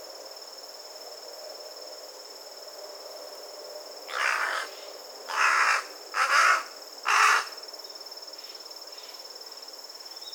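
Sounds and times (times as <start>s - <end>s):
Corvus corone carrion crow cawing: 4.1s - 7.6s.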